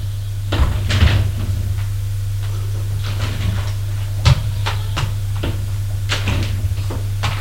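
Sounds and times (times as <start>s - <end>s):
elevator doors sliding: 0.0s - 7.3s
steady low motor hum: 0.0s - 7.3s.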